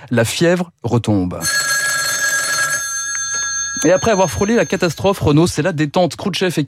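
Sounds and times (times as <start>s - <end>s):
speech: 0.0s - 1.7s, 3.8s - 6.6s
old-fashioned telephone bell ringing: 1.4s - 5.4s.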